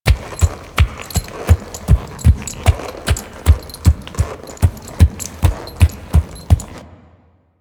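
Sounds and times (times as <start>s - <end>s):
horse hooves walking: 0.0s - 6.8s.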